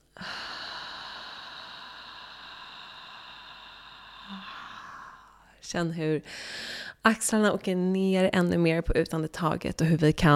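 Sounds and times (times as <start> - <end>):
long slow exhale through the mouth: 0.1 - 5.6
deep breath in through the nose: 0.2 - 5.6
speech: 5.7 - 10.3.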